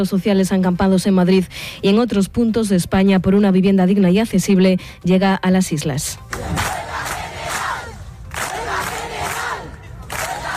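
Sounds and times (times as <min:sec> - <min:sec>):
speech: 0:00.0 - 0:06.8
rhythmic crowd chanting at an open public assembly of a housing protest: 0:06.3 - 0:10.5.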